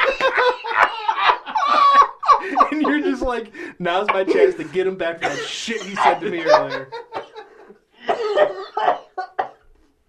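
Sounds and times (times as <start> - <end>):
laughter: 0.0 - 9.6
speech: 3.2 - 7.0
coughing fit: 4.0 - 6.8, 8.0 - 9.7.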